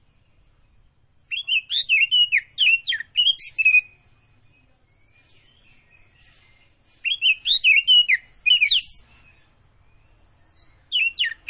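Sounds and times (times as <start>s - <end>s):
Oriental magpie-robin singing bright whistled notes: 0.0s - 11.4s.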